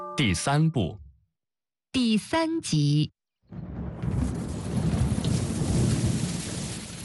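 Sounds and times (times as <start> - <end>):
speech: 0.2 - 1.0, 1.9 - 3.7
light rain pattering on glass roof tiles outdoors in the evening: 3.7 - 6.9.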